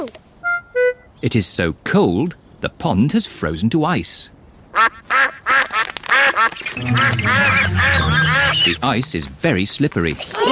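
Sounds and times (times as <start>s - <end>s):
speech: 0.0s - 0.2s, 1.2s - 5.0s, 6.8s - 10.5s
ducks quacking at a frozen pond on a cold day: 4.8s - 9.0s.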